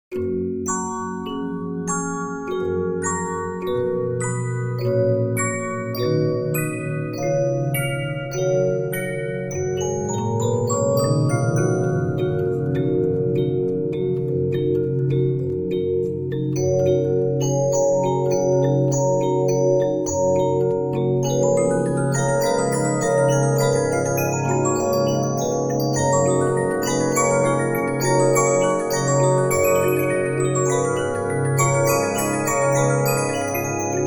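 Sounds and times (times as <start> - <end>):
15-inch disc music box playing a melody: 0.2 - 34.0.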